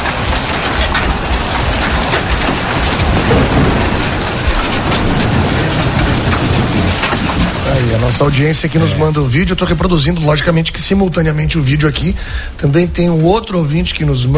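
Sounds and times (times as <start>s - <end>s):
hail impact clicks: 0.0s - 14.3s
heavy rain roar in a hailstorm: 0.0s - 14.3s
speech: 8.0s - 14.3s.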